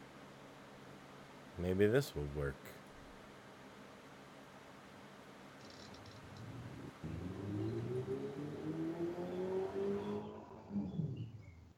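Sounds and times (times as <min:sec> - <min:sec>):
speech: 0:01.6 - 0:02.8
road rumble: 0:06.2 - 0:11.5
car engine passing: 0:06.2 - 0:11.6
tire noise: 0:06.2 - 0:11.6.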